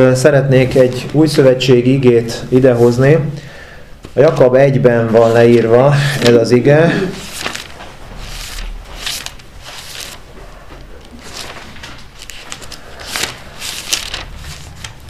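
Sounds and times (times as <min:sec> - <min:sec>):
speech: 0:00.0 - 0:03.5, 0:04.2 - 0:07.2
paper pages flipping: 0:04.1 - 0:15.0.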